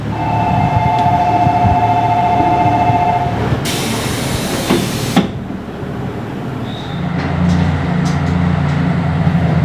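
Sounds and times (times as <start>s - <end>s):
diesel express train rumbling as it departs station: 0.0s - 9.6s
hissing burst of air from diesel train: 3.6s - 5.4s.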